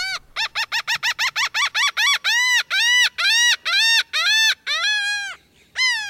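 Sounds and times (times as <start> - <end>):
laughing gull calling: 0.0 - 6.0.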